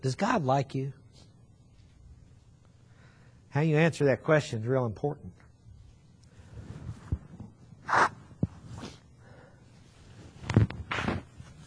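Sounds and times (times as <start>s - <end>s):
speech: 0.0s - 1.0s, 3.5s - 5.4s
person blowing nose: 7.9s - 8.2s.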